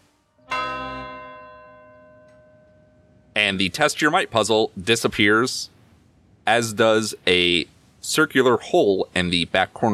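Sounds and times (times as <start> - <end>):
bell ringing from a dart strike: 0.4 - 3.3
speech: 3.4 - 5.7, 6.5 - 9.9.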